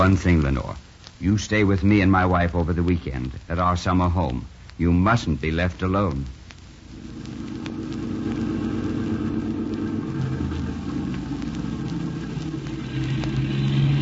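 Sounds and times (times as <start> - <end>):
speech: 0.0 - 6.4
car engine rumbling: 6.8 - 14.0
low continuous road drone: 6.8 - 14.0.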